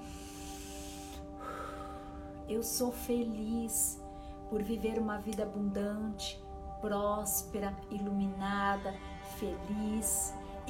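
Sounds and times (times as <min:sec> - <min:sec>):
long deep inhale through the nose: 0:00.0 - 0:02.4
soft sustained musical drone: 0:00.0 - 0:10.6
speech: 0:02.5 - 0:10.6.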